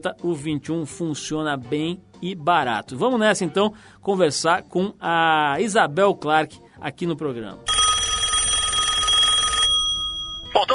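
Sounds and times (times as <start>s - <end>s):
speech: 0.0s - 7.8s
telephone ringing with a buzzing electronic trill: 7.7s - 10.7s.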